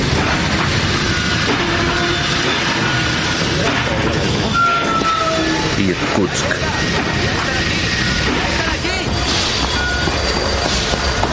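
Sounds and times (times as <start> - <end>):
train on the Trans-Siberian railway rumbling through a tunnel at night: 0.0 - 11.3
thin high squeal of train wheels or brakes stopping at a station: 0.8 - 3.4, 4.2 - 5.8, 6.7 - 11.3
speech: 5.9 - 6.6.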